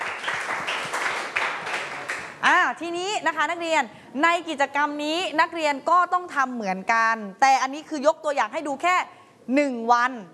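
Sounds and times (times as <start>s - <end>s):
students in a classroom clapping: 0.0s - 2.4s
speech: 2.7s - 10.3s.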